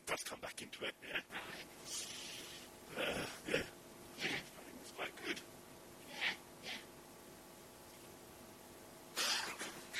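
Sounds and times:
speech: 0.2s - 2.1s, 2.9s - 3.7s
person with COVID coughing: 3.0s - 4.5s, 9.2s - 9.8s.

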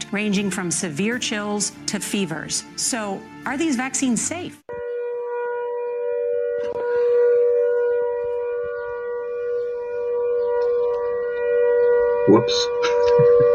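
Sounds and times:
speech: 0.1s - 4.6s, 12.3s - 13.4s
old New Zealand air raid siren wailing: 4.7s - 13.5s
laughter: 12.8s - 13.5s.

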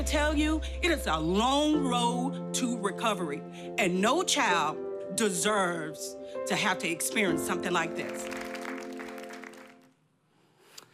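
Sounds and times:
speech: 0.0s - 8.5s
audience applause: 8.0s - 9.9s.

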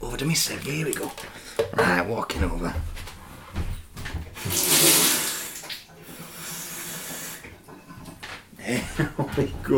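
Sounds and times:
speech: 0.2s - 3.0s, 8.7s - 9.7s
water running from a sink tap into a container of warm malty mixture: 4.4s - 7.7s
laughter: 8.6s - 9.7s.

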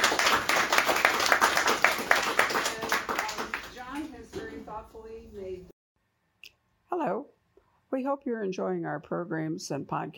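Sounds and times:
audience applause at an author event: 0.0s - 3.8s
speech: 8.0s - 10.1s.

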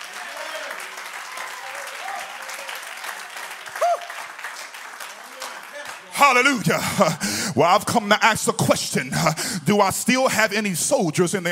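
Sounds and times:
audience clapping hands in applause: 0.0s - 6.8s
speech: 6.2s - 11.5s.

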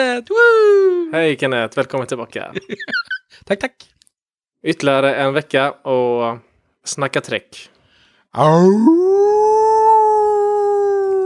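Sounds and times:
speech: 0.0s - 4.0s, 4.6s - 9.4s
wolf howling: 8.4s - 11.2s.

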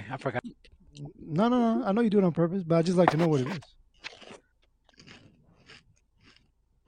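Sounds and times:
speech: 0.1s - 3.8s
crunching of pork rind chips: 3.1s - 6.8s.

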